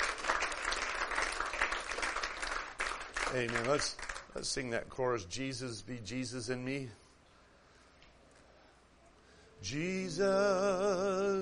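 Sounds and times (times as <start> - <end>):
church congregation clapping hands during a worship service: 0.0 - 4.6
speech: 3.3 - 7.0, 9.6 - 11.4.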